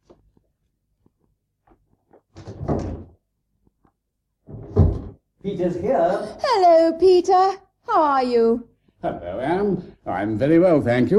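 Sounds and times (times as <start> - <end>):
door thump: 2.4 - 3.2, 4.5 - 5.2
speech: 5.4 - 11.1.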